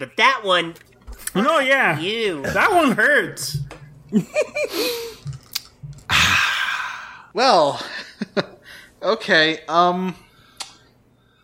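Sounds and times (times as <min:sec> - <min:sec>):
speech: 0:00.0 - 0:05.2, 0:07.4 - 0:10.2
person taking a big sip of water: 0:04.9 - 0:07.2.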